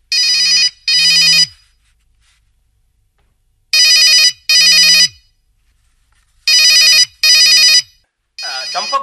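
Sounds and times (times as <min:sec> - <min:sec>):
telephone ringing: 0:00.1 - 0:01.6, 0:03.8 - 0:05.2, 0:06.5 - 0:09.0.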